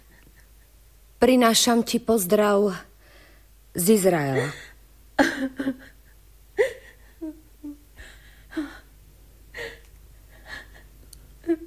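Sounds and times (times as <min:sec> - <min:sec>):
speech: 0:01.2 - 0:02.9, 0:03.8 - 0:05.9
person sobbing softly with shaky gasps: 0:04.3 - 0:08.9, 0:09.5 - 0:11.6.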